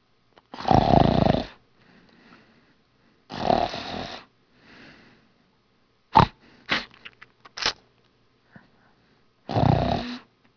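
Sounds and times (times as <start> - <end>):
people snoring: 0.6 - 1.6, 3.3 - 4.3, 9.5 - 10.3.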